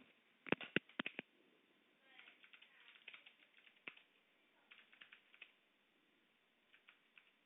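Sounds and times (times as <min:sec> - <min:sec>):
typing on a clicky computer keyboard: 0:00.5 - 0:01.3, 0:02.2 - 0:04.1, 0:04.7 - 0:05.5, 0:06.7 - 0:07.4.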